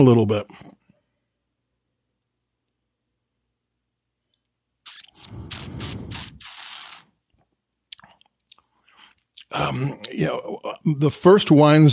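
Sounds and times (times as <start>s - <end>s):
speech: 0.0s - 0.7s, 9.5s - 11.9s
wet mouth sounds of wine tasting: 4.8s - 7.1s, 7.9s - 10.2s
person slurping wine: 4.9s - 7.0s.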